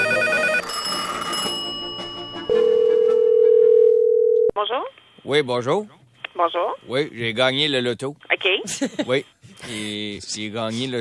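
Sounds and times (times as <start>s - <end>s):
telephone ringback tone on an outgoing call: 0.0s - 4.5s
speech: 4.7s - 10.9s.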